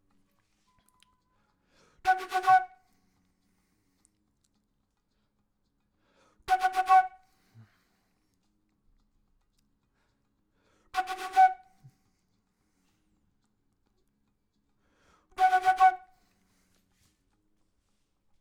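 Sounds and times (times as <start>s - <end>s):
flute intro: 2.1s - 2.8s, 6.5s - 7.3s, 11.0s - 11.9s, 15.4s - 16.3s.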